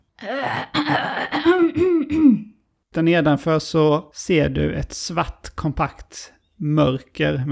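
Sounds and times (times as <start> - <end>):
man loudly clearing his throat: 0.2 - 2.6
speech: 3.0 - 7.5.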